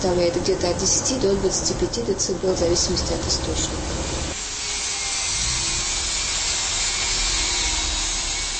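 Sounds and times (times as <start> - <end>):
speech: 0.0 - 4.1
sawing at a construction site: 4.0 - 8.5.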